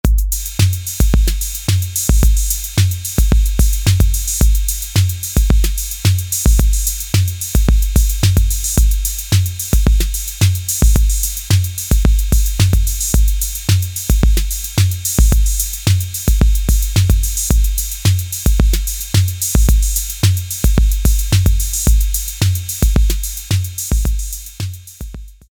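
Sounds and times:
Roland TR-808 drum machine rock beat: 0:00.0 - 0:25.5.

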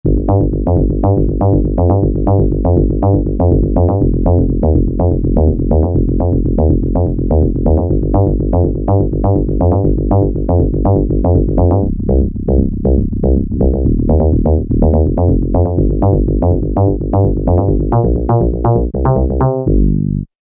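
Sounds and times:
synth pluck: 0:00.1 - 0:20.3.

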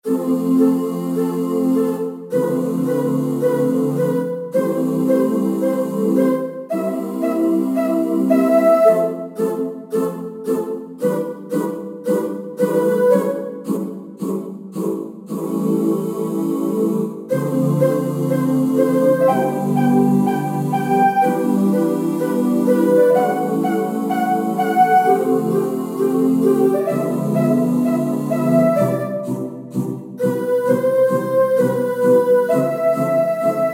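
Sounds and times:
Roland SC-880 synth vox factory patch: 0:00.0 - 0:33.7.

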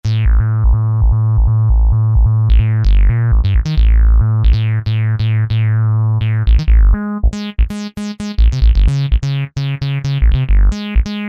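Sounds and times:
303 bass synth: 0:00.0 - 0:11.2.

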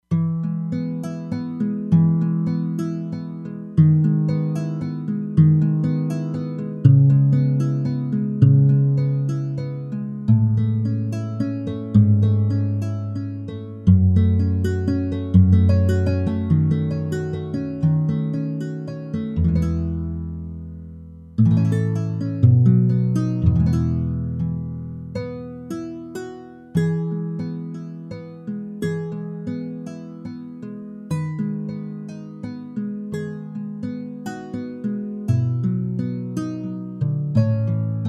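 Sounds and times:
nylon guitar factory patch on an E-mu Proteus-3: 0:00.0 - 0:38.0.

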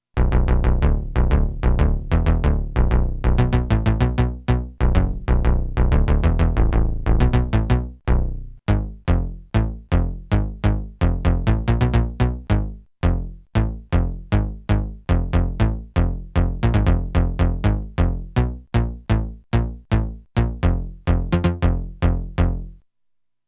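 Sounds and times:
Moog synthesizer bass: 0:00.0 - 0:22.8.

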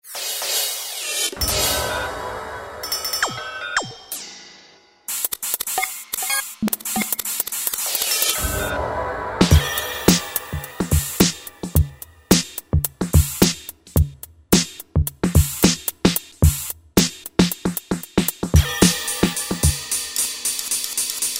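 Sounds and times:
synthesizer drum kit factory preset sounds: 0:03.1 - 0:04.2, 0:05.1 - 0:19.8.

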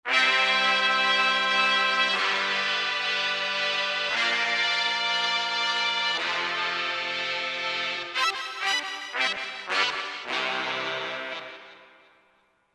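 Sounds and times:
Latin world music: 0:00.1 - 0:11.8.

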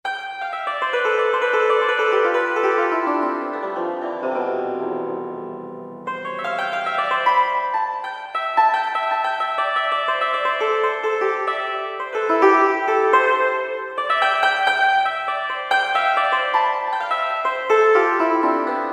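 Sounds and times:
guzheng plucking: 0:00.0 - 0:18.9.

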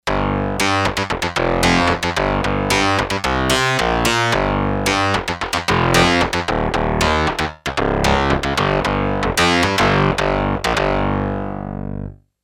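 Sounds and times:
synth bass factory preset voice: 0:00.0 - 0:12.2.

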